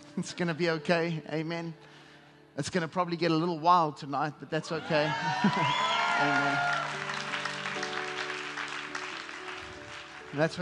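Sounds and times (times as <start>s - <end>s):
speech: 0.2s - 2.0s, 2.6s - 6.8s, 10.3s - 10.6s
large gathering applauding: 4.8s - 10.6s.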